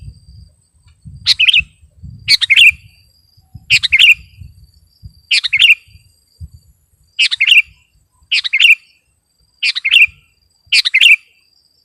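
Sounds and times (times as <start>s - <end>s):
faint low thumps: 0.0s - 5.3s, 5.9s - 6.8s
sooty-headed bulbul song: 1.0s - 6.1s, 7.2s - 11.5s.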